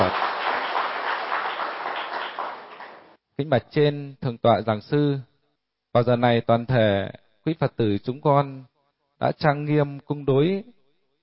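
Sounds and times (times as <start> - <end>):
Buddhist congregation applauding at a dharma lecture: 0.0 - 3.2
speech: 3.4 - 5.3, 6.0 - 10.8.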